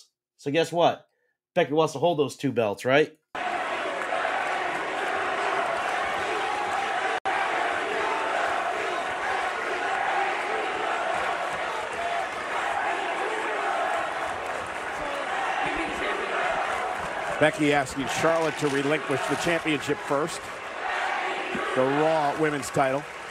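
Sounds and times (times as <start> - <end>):
speech: 0.0 - 3.2, 17.4 - 20.6, 21.8 - 23.2
large indoor wrestling arena crowd chanting and roaring: 3.4 - 23.2.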